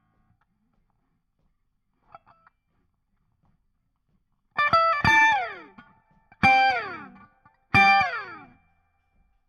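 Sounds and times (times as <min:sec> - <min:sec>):
backing guitar solo: 0:04.6 - 0:08.6.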